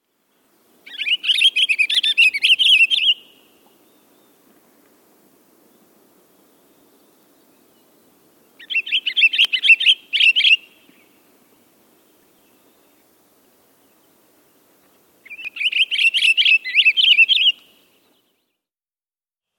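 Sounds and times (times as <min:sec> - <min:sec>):
Pine Grosbeak: 0:00.8 - 0:04.5, 0:08.6 - 0:11.3, 0:12.0 - 0:18.3.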